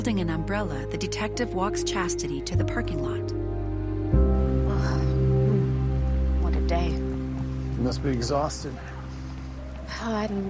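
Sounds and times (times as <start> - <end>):
speech: 0.0 - 3.4, 7.8 - 8.9, 9.9 - 10.4
rain streaming down a window: 4.7 - 10.4.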